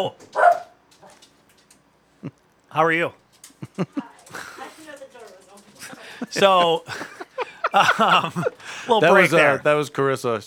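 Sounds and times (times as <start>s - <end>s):
speech: 0.0s - 0.4s, 2.2s - 4.4s, 6.2s - 7.1s, 7.7s - 10.4s
faint noise: 0.0s - 10.4s
dog barking: 0.3s - 1.2s
laughter: 3.6s - 4.9s, 5.6s - 9.6s.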